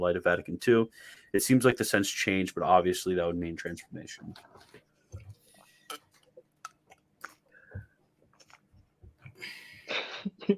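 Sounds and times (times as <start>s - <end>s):
speech: 0.0s - 4.8s, 9.4s - 10.5s
mouth clicks: 5.9s - 7.8s.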